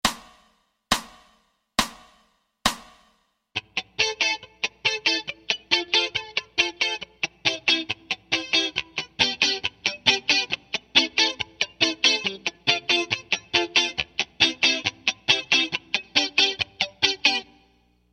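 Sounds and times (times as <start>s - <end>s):
ska rhythm guitar playing 16ths: 3.6s - 17.7s.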